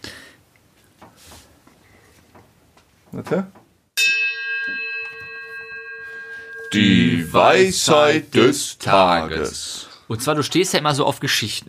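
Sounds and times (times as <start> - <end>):
speech: 3.1 - 3.6, 6.7 - 11.6
single bell struck and ringing: 4.0 - 7.7.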